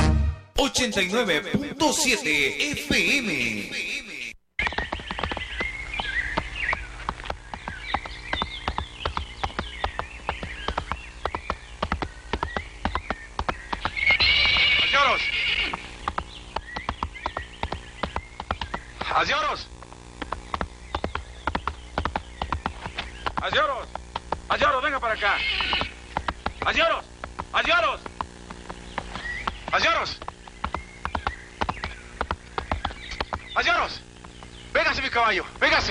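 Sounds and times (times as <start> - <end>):
speech: 0.6 - 4.1
horse hoofbeats clopping: 1.4 - 3.7, 4.6 - 35.8
horse neighing loudly: 13.9 - 16.0, 25.1 - 26.0.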